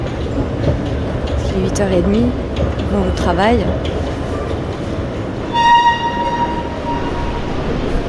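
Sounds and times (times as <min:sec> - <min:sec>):
metro station ambience in Paris: 0:00.0 - 0:08.0
metro train rumbling past in Charles de Gaulle–Étoile station in Paris: 0:00.0 - 0:08.0
speech: 0:01.6 - 0:04.2
steady high tone of a horn or brake squeal: 0:05.5 - 0:08.0.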